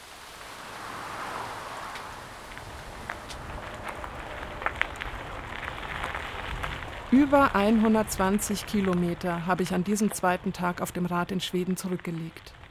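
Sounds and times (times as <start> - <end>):
heavy downpour rain under hut canopy: 0.0 - 9.7
speech: 7.1 - 12.6.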